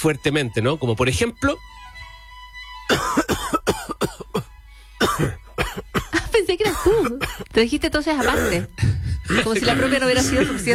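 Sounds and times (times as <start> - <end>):
speech: 0.0 - 1.7, 7.6 - 10.7
person with an allergy coughing dry harsh coughs: 2.9 - 7.5, 8.2 - 8.7, 9.3 - 10.7
laughter: 8.2 - 10.7.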